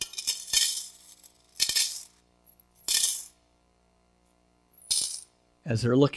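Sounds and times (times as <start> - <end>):
coins dropping onto an offering plate at church: 0.0 - 3.4, 4.7 - 5.4.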